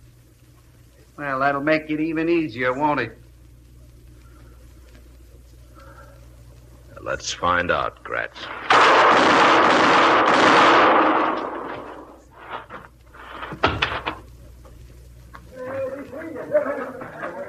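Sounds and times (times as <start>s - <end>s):
speech: 1.2s - 3.2s, 7.1s - 9.9s
pistol gunshots in a showdown between two men: 8.6s - 12.2s
laughter: 15.6s - 17.4s.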